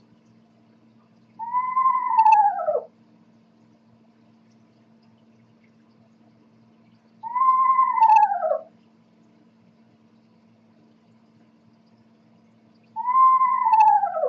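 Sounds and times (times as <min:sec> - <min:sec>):
faint steady low hum: 0:00.0 - 0:14.2
Eastern screech owl giving descending quavering whinnies: 0:01.4 - 0:02.9, 0:07.2 - 0:08.7, 0:13.0 - 0:14.2.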